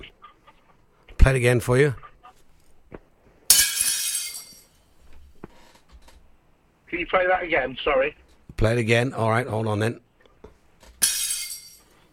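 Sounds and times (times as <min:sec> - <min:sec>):
speech: 0:01.2 - 0:02.0, 0:07.0 - 0:10.0
glass shattering: 0:03.5 - 0:04.8, 0:11.0 - 0:12.0.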